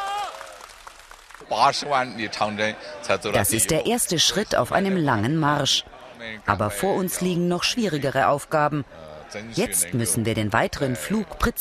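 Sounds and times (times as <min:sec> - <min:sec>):
scattered clapping in a control center: 0:00.0 - 0:01.5
excited crowd cheering in a control center: 0:00.0 - 0:06.9, 0:08.8 - 0:11.5
chatter: 0:01.4 - 0:11.5
speech: 0:01.4 - 0:11.5.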